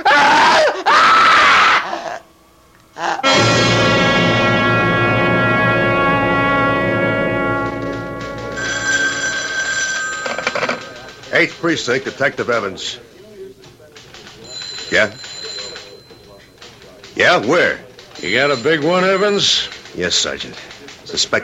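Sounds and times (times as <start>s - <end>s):
woman screaming: 0.0s - 2.2s
telephone ringing: 3.2s - 12.6s, 14.3s - 20.4s
speech: 11.4s - 13.1s, 14.9s - 15.3s, 17.2s - 21.4s.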